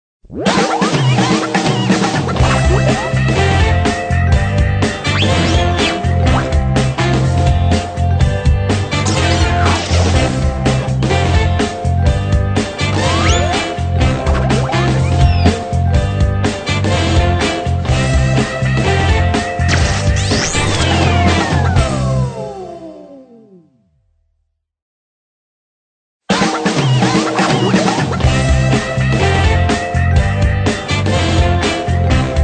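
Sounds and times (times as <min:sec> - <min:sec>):
groovy kids music: 0:00.3 - 0:22.7, 0:26.3 - 0:32.4.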